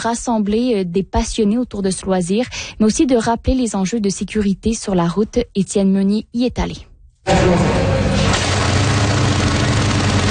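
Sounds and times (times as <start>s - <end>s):
speech: 0.0s - 7.8s
motorcycle engine running at a motorcycle festival in Quebec: 7.3s - 10.2s.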